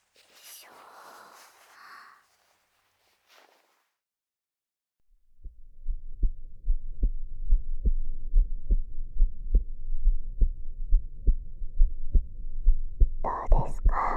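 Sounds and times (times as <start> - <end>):
low dull rumble: 5.3 - 13.2
heartbeat heard up close through a chest: 5.4 - 14.1.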